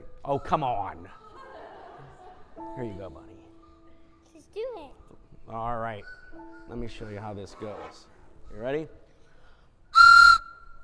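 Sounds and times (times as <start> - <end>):
speech: 0.3 - 1.2, 2.6 - 3.4, 4.4 - 9.0
laughter: 1.0 - 3.0
toy train whistle blast: 10.0 - 10.6.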